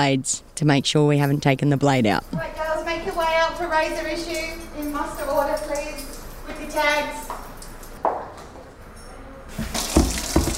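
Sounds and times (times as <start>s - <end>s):
speech: 0.0s - 2.6s, 3.4s - 5.9s, 6.8s - 7.2s
tap water filling a container in a women's prison: 9.6s - 10.5s.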